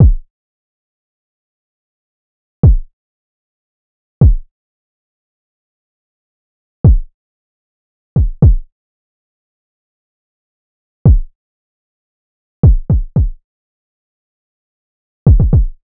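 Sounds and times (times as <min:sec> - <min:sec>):
RnB drum loop with kick at 114 BPM: 0:08.2 - 0:08.6, 0:11.1 - 0:11.3, 0:12.6 - 0:13.4, 0:15.3 - 0:15.8.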